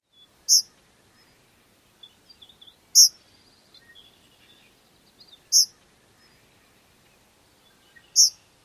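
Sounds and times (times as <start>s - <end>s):
Eastern Kingbird kzeet call: 0.2s - 1.4s, 2.0s - 3.2s, 3.8s - 6.8s, 7.7s - 8.5s.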